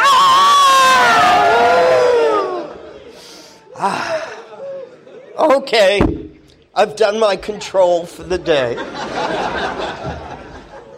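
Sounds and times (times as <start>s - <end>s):
audience yelling together: 0.0s - 3.0s
laughter: 2.1s - 5.7s, 8.2s - 10.9s
speech: 5.6s - 6.2s, 6.8s - 9.4s.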